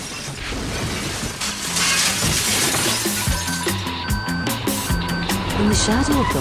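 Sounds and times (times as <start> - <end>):
person crashing into a jukebox: 0.0 - 3.8
glass shattering: 0.0 - 5.0
clinking glass debris: 0.0 - 6.3
speech: 5.6 - 6.3.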